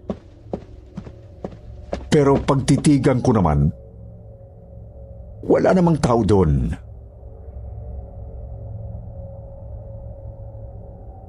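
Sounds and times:
footsteps walking in and out of a house: 0:00.0 - 0:03.1
speech: 0:02.1 - 0:03.8, 0:05.4 - 0:06.8.

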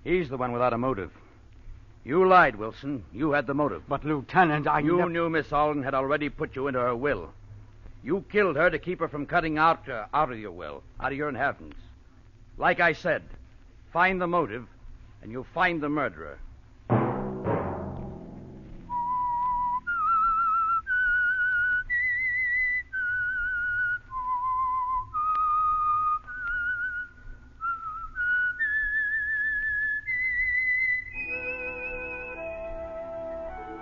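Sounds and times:
speech: 0:00.0 - 0:01.2, 0:02.0 - 0:07.4, 0:08.0 - 0:11.8, 0:12.6 - 0:16.5
low steady musical backing: 0:16.8 - 0:21.3, 0:31.1 - 0:33.8
person whistling a slow haunting radio theme tune: 0:18.9 - 0:33.8.

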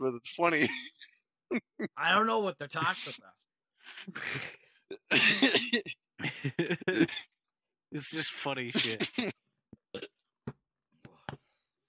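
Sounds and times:
speech: 0:00.0 - 0:07.3, 0:07.9 - 0:10.2
laughter: 0:04.0 - 0:07.3
wet gurgling burp: 0:09.9 - 0:10.2.

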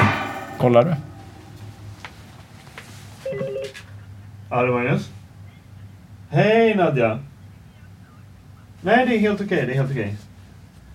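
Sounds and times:
low steady hum: 0:00.0 - 0:10.9
speech: 0:00.6 - 0:01.1, 0:04.5 - 0:05.2, 0:06.3 - 0:07.3, 0:08.8 - 0:10.3
phone ringtone of warbling electronic tones: 0:03.2 - 0:03.8.

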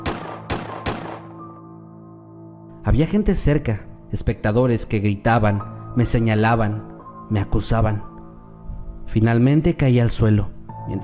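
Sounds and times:
gunshots as people open fire: 0:00.0 - 0:01.4
speech: 0:02.9 - 0:08.1, 0:09.1 - 0:11.0.

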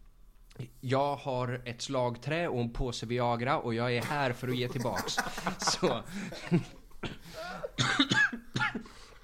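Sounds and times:
speech: 0:00.8 - 0:06.8
laughter: 0:04.4 - 0:06.8
person coughing: 0:06.2 - 0:09.1.

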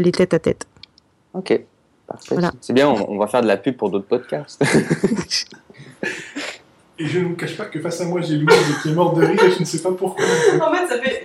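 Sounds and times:
speech: 0:00.0 - 0:00.7, 0:01.3 - 0:06.3, 0:07.0 - 0:11.2
laughter: 0:04.6 - 0:06.6, 0:08.2 - 0:11.2
person coughing: 0:08.4 - 0:09.5.

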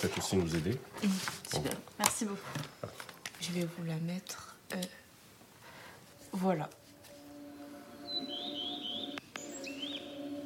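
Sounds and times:
speech: 0:00.0 - 0:05.0, 0:06.3 - 0:06.8
steady sustained drone: 0:06.9 - 0:10.4
high twittering bird: 0:08.0 - 0:10.4.

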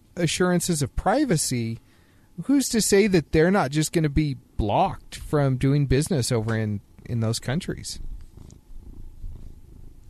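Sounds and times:
speech: 0:00.2 - 0:08.1
cat purring at a microphone: 0:06.0 - 0:10.0.

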